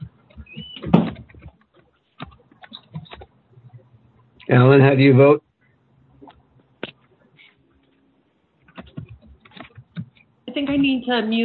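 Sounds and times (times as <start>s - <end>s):
computer keyboard typing: 0.0s - 4.4s, 8.6s - 11.0s
faint room hum: 0.0s - 11.4s
speech: 4.5s - 5.5s, 10.8s - 11.4s.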